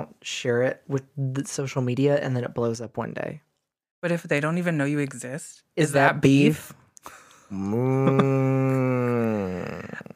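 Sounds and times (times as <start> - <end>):
speech: 0.2 - 9.8
person imitating a cow mooing: 7.5 - 10.1.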